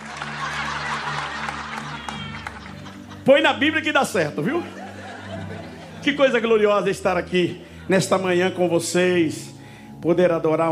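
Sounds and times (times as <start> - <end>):
congregation applauding: 0.0 - 3.3
people chuckling: 0.0 - 3.5, 4.4 - 6.6
speech: 3.2 - 4.8, 6.0 - 10.7.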